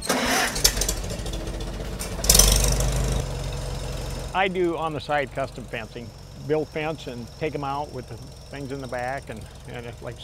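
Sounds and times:
Farmall M tractor engine in Iowa running and revving: 0.0 - 10.2
speech: 4.4 - 10.2.

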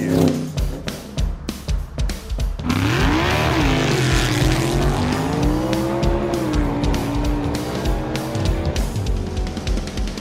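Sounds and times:
off-road car engine revving and accelerating hard: 0.0 - 1.1, 2.6 - 10.2.

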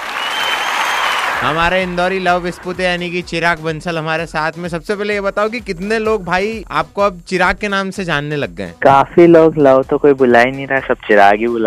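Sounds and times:
crowd applauding to welcome a guest: 0.0 - 3.2
speech: 1.4 - 11.6.

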